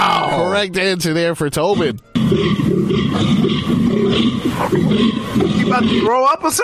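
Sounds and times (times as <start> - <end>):
speech: 0.6 - 6.6
European fallow deer groaning call: 1.6 - 6.2.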